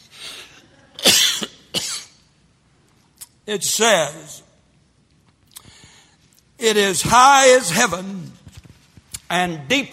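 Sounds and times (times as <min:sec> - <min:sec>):
person coughing: 0:00.8 - 0:02.2
speech: 0:03.5 - 0:04.4, 0:06.6 - 0:08.4, 0:09.3 - 0:09.9.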